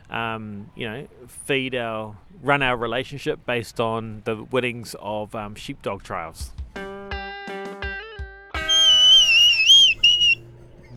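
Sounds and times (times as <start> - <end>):
speech: 0.1 - 6.6
short sharp whistle blasts blown by mouth: 8.7 - 10.4.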